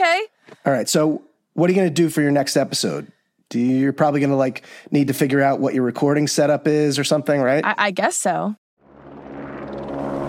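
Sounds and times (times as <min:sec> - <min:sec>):
speech: 0:00.7 - 0:08.6
helicopter engine roar with a low humming drone outside: 0:08.8 - 0:10.2.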